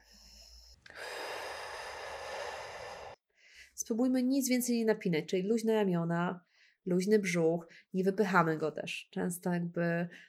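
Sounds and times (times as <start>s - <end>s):
slow exhale during a breathing exercise: 0.0s - 3.7s
speech: 3.8s - 10.2s.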